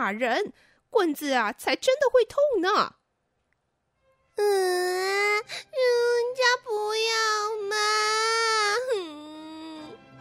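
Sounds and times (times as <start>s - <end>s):
speech: 0.0s - 3.0s, 4.4s - 9.1s
girl crying and sobbing at a loom: 4.4s - 10.0s.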